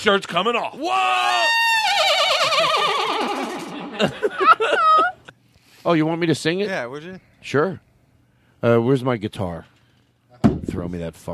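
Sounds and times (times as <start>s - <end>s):
speech: 0.0s - 4.8s, 5.8s - 7.9s, 8.6s - 9.7s, 10.6s - 11.3s
person imitating a horse whinny: 1.0s - 3.8s
laughter: 1.8s - 5.3s.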